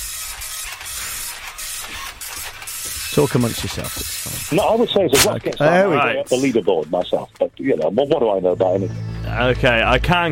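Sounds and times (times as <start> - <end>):
old slow Amstrad computer printer printing: 0.0 - 5.3
speech: 3.2 - 10.3.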